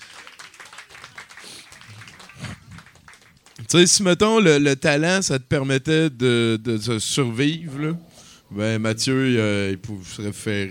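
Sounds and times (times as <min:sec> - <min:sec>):
audience at a live recording applauding: 0:00.0 - 0:03.7
speech: 0:03.7 - 0:10.7.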